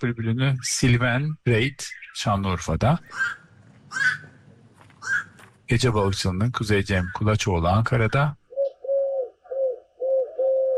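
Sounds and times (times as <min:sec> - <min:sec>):
speech: 0:00.0 - 0:04.3, 0:05.1 - 0:08.4
dove cooing in Istanbul: 0:03.1 - 0:04.4, 0:08.5 - 0:10.7.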